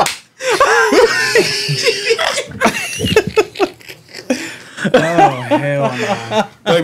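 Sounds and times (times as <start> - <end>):
hand slaps: 0.0 - 0.3
people laughing: 0.4 - 6.8
excited vocal noises: 0.6 - 4.4
speech: 1.4 - 1.9, 6.0 - 6.5.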